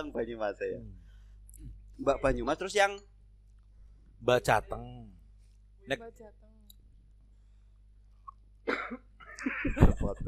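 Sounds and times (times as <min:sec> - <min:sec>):
speech: 0:00.0 - 0:01.0, 0:02.0 - 0:03.1, 0:04.2 - 0:05.2, 0:05.8 - 0:06.4, 0:08.7 - 0:10.2
faint low hum: 0:00.0 - 0:10.2
person coughing harshly: 0:08.7 - 0:10.2.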